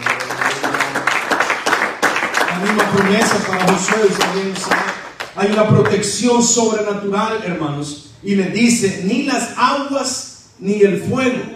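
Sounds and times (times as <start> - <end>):
crowd applauding: 0.0 - 6.1
speech: 2.6 - 11.5.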